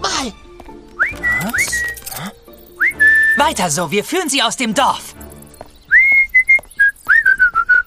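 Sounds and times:
speech: 0:00.2 - 0:00.5, 0:01.1 - 0:01.9, 0:03.4 - 0:05.1
person whistling a tune: 0:01.0 - 0:02.2, 0:02.8 - 0:03.5, 0:05.9 - 0:07.8.

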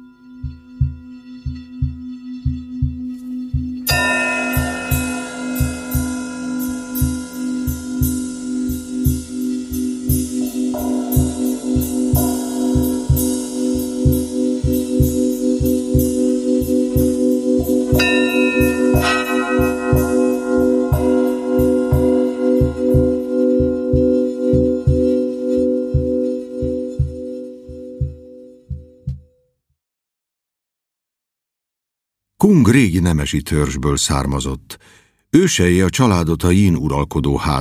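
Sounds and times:
large bell ringing: 0:00.0 - 0:28.4
speech: 0:32.5 - 0:37.6.

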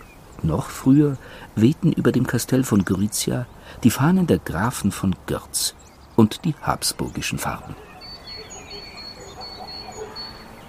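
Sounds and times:
speech: 0:00.4 - 0:07.9
distant dog barking at a farmstead among vineyards: 0:07.5 - 0:10.6.

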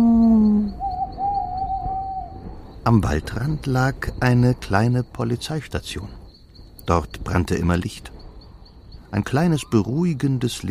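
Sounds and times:
owl hooting at night in a forest: 0:00.0 - 0:02.6
speech: 0:02.9 - 0:06.2, 0:06.9 - 0:08.2, 0:09.1 - 0:10.6.

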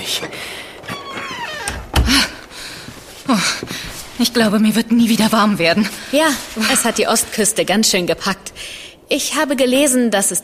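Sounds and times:
thin wavering squeaky tones: 0:00.2 - 0:02.4
door swinging shut: 0:01.1 - 0:02.4
speech: 0:04.2 - 0:10.4.

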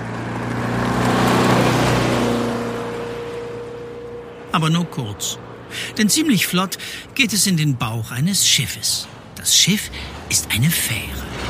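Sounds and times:
bus engine humming while driving off: 0:00.0 - 0:11.4
speech: 0:04.6 - 0:11.4.

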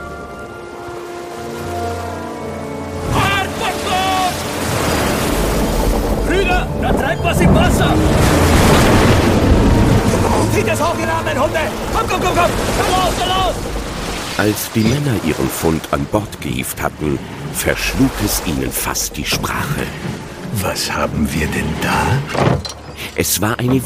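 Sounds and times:
stormy sea waves crashing at night: 0:00.0 - 0:23.8
indistinct voices: 0:06.2 - 0:23.8
speech: 0:07.3 - 0:08.4, 0:10.9 - 0:23.8.

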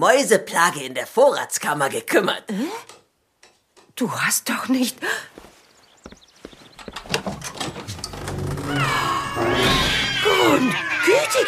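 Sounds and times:
speech: 0:00.0 - 0:03.0, 0:04.0 - 0:05.5, 0:10.6 - 0:11.4
sharp clattering knocks: 0:06.1 - 0:08.8
crowd of cats meowing and yowling: 0:08.5 - 0:11.4.

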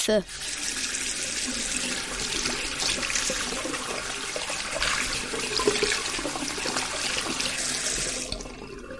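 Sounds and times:
speech: 0:00.0 - 0:00.8
water tap running at a sink while washing hands: 0:00.0 - 0:08.9.

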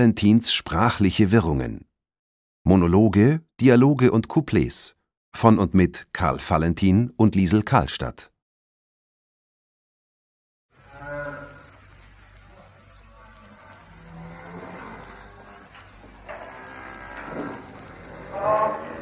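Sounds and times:
speech: 0:00.0 - 0:01.9, 0:02.6 - 0:08.3
cow for sale mooing: 0:10.8 - 0:11.8, 0:13.2 - 0:19.0
voice: 0:18.3 - 0:19.0.

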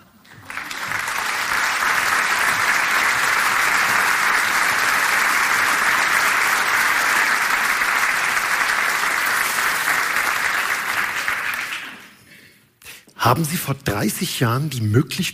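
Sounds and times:
large audience applause welcoming a performer: 0:00.0 - 0:12.3
speech: 0:13.3 - 0:15.3.

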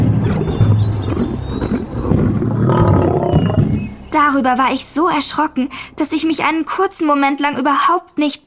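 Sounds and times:
lion roaring and growling: 0:00.2 - 0:03.9
speech: 0:04.2 - 0:08.4.

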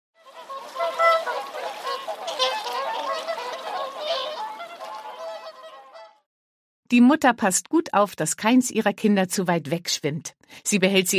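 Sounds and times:
mother swan calling on a pond in a park: 0:00.2 - 0:06.3
speech: 0:06.9 - 0:11.1.

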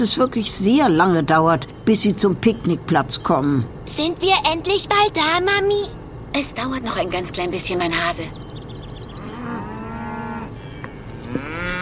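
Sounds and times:
speech: 0:00.0 - 0:08.5
cows mooing: 0:09.0 - 0:11.8.

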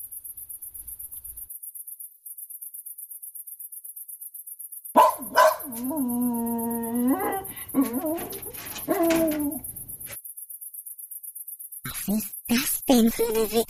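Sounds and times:
young German shepherd dog yelping and barking: 0:05.0 - 0:10.2
speech: 0:05.8 - 0:06.2, 0:07.7 - 0:09.1, 0:12.1 - 0:13.6.

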